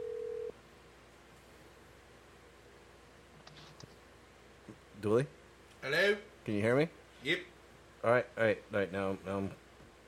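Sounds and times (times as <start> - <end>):
telephone dial tone dialing out for a call: 0.0 - 0.5
speech: 5.0 - 9.6.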